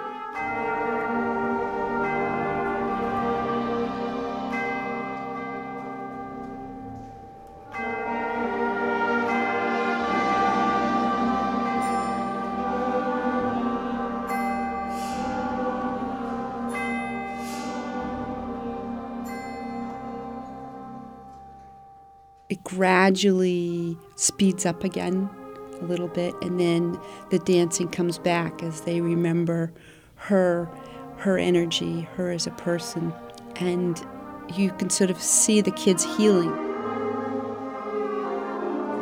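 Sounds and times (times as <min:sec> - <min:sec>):
sustained orchestral tones: 0:00.0 - 0:21.9, 0:22.5 - 0:39.0
bells tolling: 0:00.3 - 0:36.7
speech: 0:22.7 - 0:36.6.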